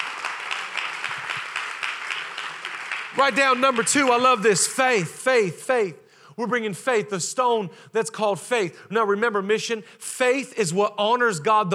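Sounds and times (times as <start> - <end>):
large crowd applauding: 0.0 - 5.1
speech: 3.2 - 11.7.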